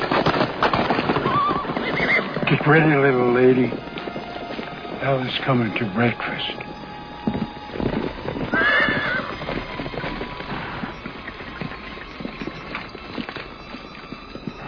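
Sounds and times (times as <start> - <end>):
horse hooves clip-clopping: 0.0 - 14.6
horse neighing: 1.2 - 2.6, 7.5 - 14.6
speech: 2.5 - 3.9, 5.0 - 6.7.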